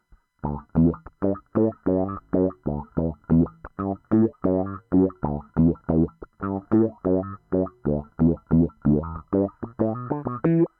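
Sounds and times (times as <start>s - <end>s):
Mu-Tron wah effect: 0.4s - 10.7s.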